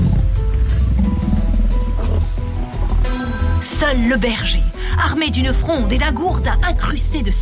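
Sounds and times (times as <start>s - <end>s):
hungry bears leopards and jackals roaring and growling in the hills of Bethlehem: 0.0s - 3.6s
speech: 3.9s - 7.4s.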